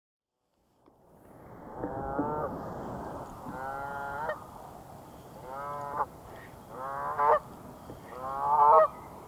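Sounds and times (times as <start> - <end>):
Canada goose honking in Greenland: 5.4 - 7.5, 8.1 - 9.0.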